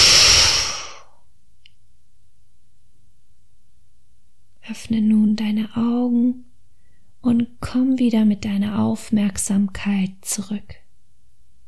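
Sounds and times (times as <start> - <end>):
forceful explosive exhale after a held breath during a breathing exercise: 0.0 - 1.2
speech: 4.7 - 6.5, 7.2 - 10.8.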